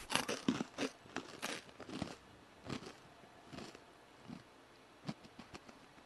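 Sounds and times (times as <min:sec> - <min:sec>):
person chewing crunchy food: 0:00.0 - 0:05.9.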